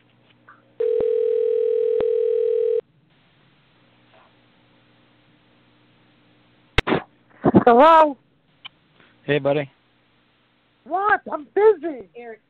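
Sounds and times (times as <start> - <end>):
electronic ringing tone on a phone line: 0.8 - 2.8
speech: 7.7 - 8.2, 9.3 - 9.8, 10.9 - 12.4.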